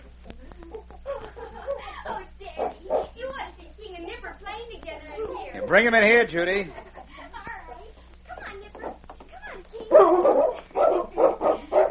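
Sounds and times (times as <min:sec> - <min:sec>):
dogs barking and yipping excitedly while playing with a child: 0:02.6 - 0:03.2, 0:09.8 - 0:11.9
speech: 0:05.7 - 0:06.8.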